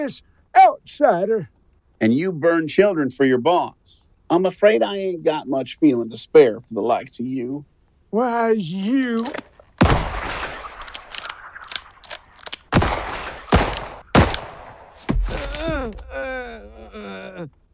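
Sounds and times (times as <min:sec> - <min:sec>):
speech: 0:00.0 - 0:09.5
gunshots in an audio drama: 0:09.8 - 0:15.6
quiet thuds: 0:14.3 - 0:16.1
person groaning in pain: 0:15.2 - 0:17.6.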